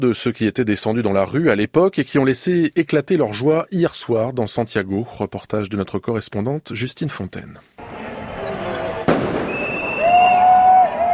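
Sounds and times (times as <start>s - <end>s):
speech: 0.0s - 8.0s
large outdoor crowd celebrating in the evening in Santiago: 7.8s - 11.1s
firework bang over Place de la Dignité in Santiago: 8.8s - 10.3s
long high whistling tones: 9.4s - 11.1s.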